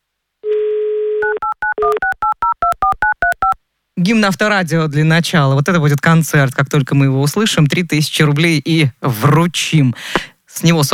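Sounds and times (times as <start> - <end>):
telephone dial tone: 0.5 - 3.6
speech: 4.0 - 10.9.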